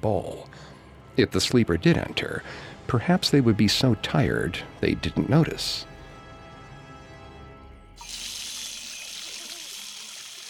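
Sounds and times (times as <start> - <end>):
speech: 0.0 - 5.9
water running from a faucet: 8.0 - 10.4.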